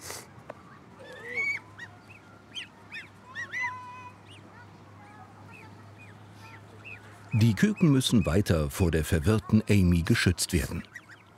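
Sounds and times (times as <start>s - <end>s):
steady low hum: 0.0s - 11.3s
domestic geese honking: 1.0s - 4.5s, 5.5s - 8.6s
speech: 7.3s - 11.0s.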